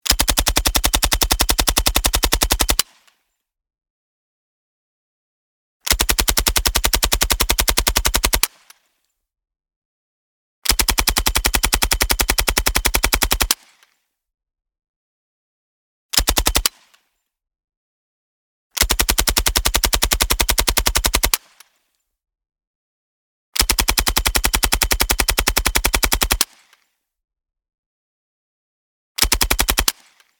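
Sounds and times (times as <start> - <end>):
M3 Grease Gun submachine gun automatic fire: 0.1 - 2.9, 5.9 - 8.6, 10.7 - 13.7, 16.2 - 16.8, 18.8 - 21.5, 23.6 - 26.6, 29.2 - 30.2.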